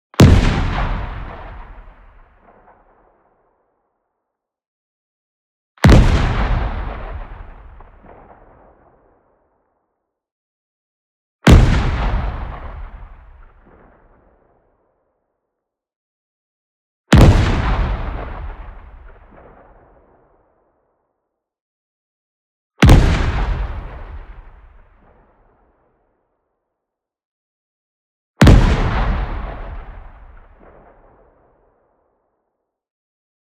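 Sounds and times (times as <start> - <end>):
short distant explosion hit: 0.2 - 3.0, 5.9 - 9.0, 11.5 - 14.3, 17.2 - 20.2, 22.8 - 25.3, 28.4 - 31.4.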